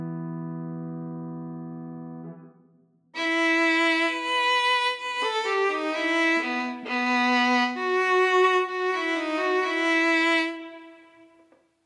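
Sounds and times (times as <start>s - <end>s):
violin playing in E minor: 3.2s - 11.5s.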